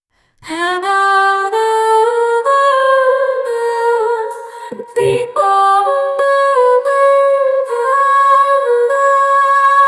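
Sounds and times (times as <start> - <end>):
female singer-songwriter singing in Arabic: 0.4 - 9.8.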